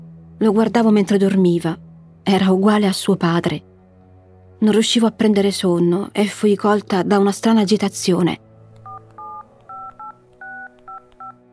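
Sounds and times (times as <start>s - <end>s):
speech: 0.4s - 3.7s, 4.6s - 8.5s
mobile phone keypad dual-pitched dialing beeps: 8.8s - 11.4s.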